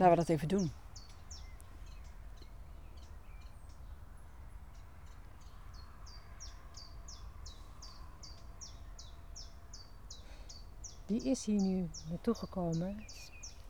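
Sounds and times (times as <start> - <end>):
speech: 0.0 - 0.8, 11.1 - 13.3
common chiffchaff singing: 11.1 - 13.5.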